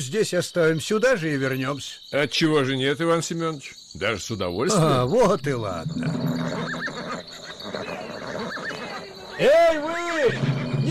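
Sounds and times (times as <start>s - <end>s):
speech: 0.0s - 6.8s, 9.4s - 10.5s
horses neighing: 4.6s - 10.8s.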